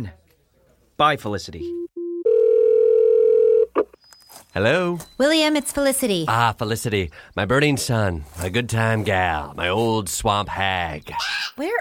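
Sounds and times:
speech: 0.0s - 0.2s, 1.0s - 1.8s, 4.5s - 11.7s
steady electronic telephone tone after a call is hung up: 1.7s - 3.7s.

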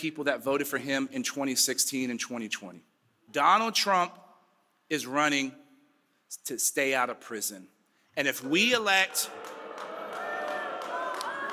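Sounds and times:
speech: 0.0s - 4.2s, 4.9s - 5.6s, 6.3s - 9.6s
large crowd at a political candidates' event booing a speaker: 8.9s - 11.5s.

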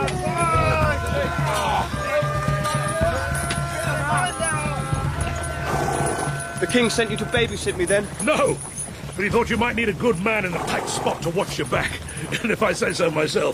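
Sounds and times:
murmur of voices: 0.0s - 8.3s
horses' hooves clopping as horses are driven: 0.0s - 13.5s
speech: 6.6s - 13.5s
laughter: 11.8s - 12.7s.

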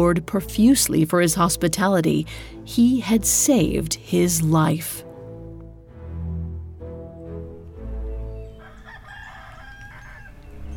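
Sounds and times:
speech: 0.0s - 5.1s
rooster crowing cock-a-doodle-doo with raspy calls: 8.4s - 10.7s.

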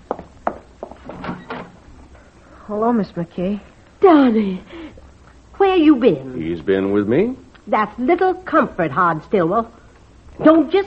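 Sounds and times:
door opening with wooden knocks, clunks and scraping rattling swing: 1.0s - 1.8s
speech: 2.7s - 4.8s, 5.8s - 9.8s, 10.4s - 10.8s.

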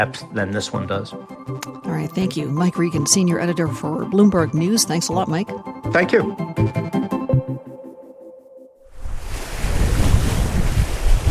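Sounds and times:
speech: 0.0s - 7.1s
wind roaring on the Barents Sea: 8.9s - 11.2s
four-foot ocean waves crashing against an expedition boat on the Barents Sea: 9.0s - 11.2s.

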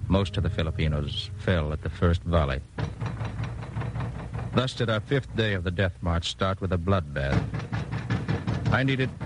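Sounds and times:
speech: 0.1s - 3.0s, 4.5s - 7.7s, 8.7s - 9.2s
knocking on a door: 2.8s - 5.4s, 7.1s - 9.2s.

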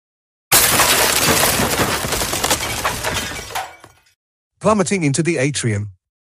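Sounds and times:
glass windows shattering above an atrium: 0.5s - 4.1s
speech: 4.6s - 6.0s.

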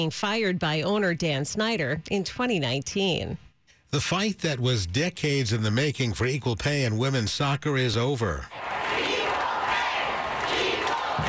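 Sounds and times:
speech: 0.0s - 8.7s
stadium crowd cheering and shouting: 8.5s - 11.2s.

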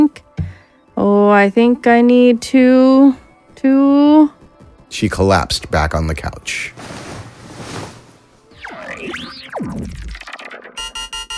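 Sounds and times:
speech: 1.0s - 7.0s
swooping warbling electronic tones: 8.5s - 11.3s
electronic alarm beeping: 10.5s - 11.3s.

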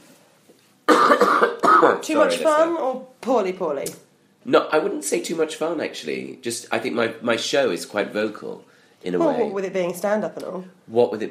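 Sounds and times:
harsh raspy coughs: 0.9s - 2.0s
speech: 2.0s - 11.3s.

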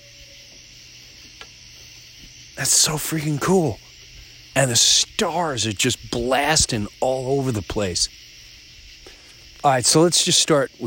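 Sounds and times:
crickets chirping outdoors at night: 0.0s - 10.8s
speech: 2.6s - 3.8s, 4.6s - 8.3s, 9.6s - 10.8s.

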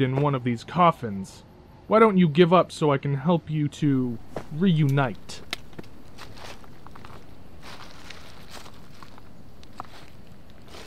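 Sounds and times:
speech: 0.0s - 5.4s
constant low rumble of noise: 0.0s - 10.8s
footsteps crunching on a loose surface: 4.1s - 10.8s.

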